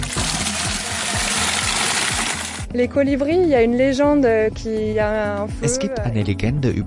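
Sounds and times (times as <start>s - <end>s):
water gushing into a watering can from a canister: 0.0s - 2.7s
speech: 2.8s - 6.8s.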